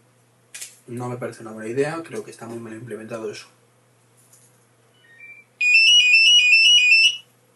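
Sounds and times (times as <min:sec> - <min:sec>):
speech: 0:00.9 - 0:03.6
telephone ringtone rapid warbling electronic trill: 0:05.2 - 0:07.2.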